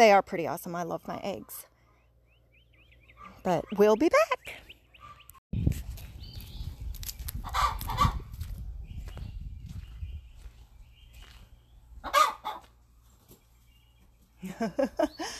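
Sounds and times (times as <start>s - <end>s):
speech: 0.0s - 1.7s, 3.4s - 4.6s, 14.4s - 15.3s
hen cackling after laying an egg: 7.4s - 8.2s, 12.0s - 12.7s.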